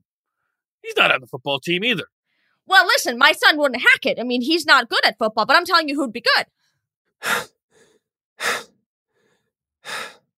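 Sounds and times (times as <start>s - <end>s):
speech: 0.8s - 6.6s, 7.2s - 7.6s
heavy breathing from an out-of-breath person: 7.2s - 10.3s.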